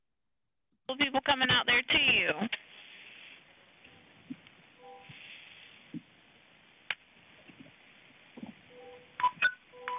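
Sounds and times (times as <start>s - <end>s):
speech: 0.9s - 2.6s
short electronic phone text message notification beeps: 4.8s - 5.2s, 8.7s - 9.9s.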